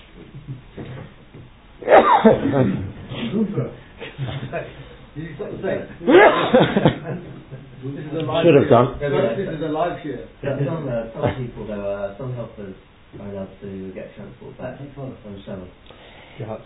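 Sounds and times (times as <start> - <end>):
person sneezing: 1.8 - 3.4
laughter: 2.0 - 7.9
speech: 2.2 - 16.6.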